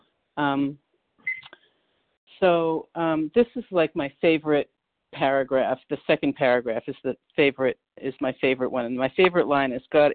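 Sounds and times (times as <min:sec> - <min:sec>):
speech: 0:00.4 - 0:00.8, 0:02.4 - 0:10.1
phone timer start beeps: 0:01.3 - 0:01.6.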